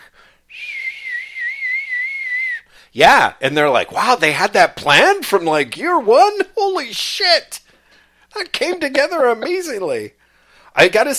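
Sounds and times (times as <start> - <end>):
person whistling imitating wind: 0.5 - 2.7
speech: 2.9 - 7.6, 8.4 - 10.2, 10.8 - 11.1.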